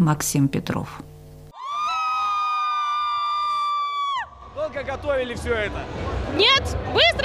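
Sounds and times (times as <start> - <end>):
speech: 0.0 - 1.1, 4.8 - 7.2
university students cheering loudly at a competition: 1.6 - 4.6.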